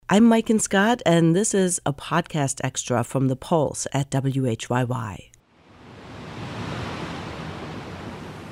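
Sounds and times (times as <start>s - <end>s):
speech: 0.1s - 5.3s
ocean waves crashing against rocks: 5.5s - 8.5s.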